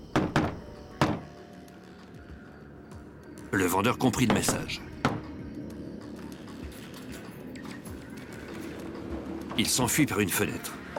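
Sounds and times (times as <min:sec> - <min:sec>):
knocking on a door in a pattern: 0:00.1 - 0:01.2
speech: 0:03.5 - 0:04.9, 0:09.6 - 0:10.8.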